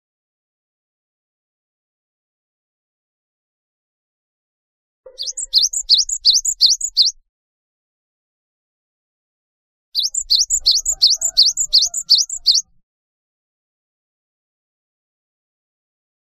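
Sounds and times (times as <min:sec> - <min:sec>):
Java sparrow song: 0:05.1 - 0:07.2, 0:10.0 - 0:12.8.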